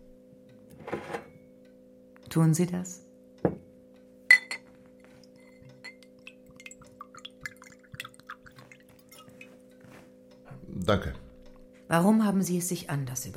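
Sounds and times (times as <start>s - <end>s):
faint steady room hum: 0.0s - 13.3s
speech: 2.3s - 3.0s, 10.9s - 11.2s, 11.9s - 13.3s
sharp glassy clinks: 4.3s - 4.7s, 5.4s - 6.8s
small trickling and dripping sounds: 5.1s - 9.9s
water poured into a glass: 5.3s - 9.6s.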